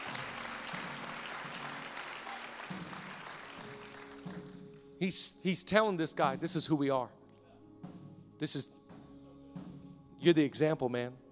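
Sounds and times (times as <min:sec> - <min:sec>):
audience clapping: 0:00.0 - 0:04.9
speech: 0:05.0 - 0:07.2, 0:08.4 - 0:08.8, 0:10.2 - 0:11.2.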